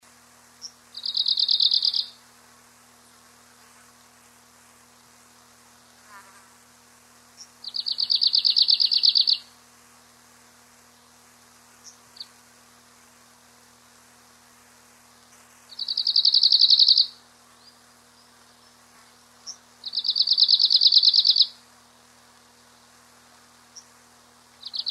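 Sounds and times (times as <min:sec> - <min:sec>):
Phylloscopus borealis vocalizing: 0:00.6 - 0:02.2, 0:07.4 - 0:09.5, 0:15.7 - 0:18.8, 0:19.4 - 0:21.5, 0:24.6 - 0:24.8.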